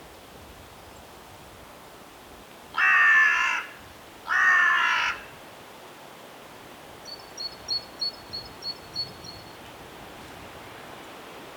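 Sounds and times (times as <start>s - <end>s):
Carrion crow cawing: 2.8s - 5.3s.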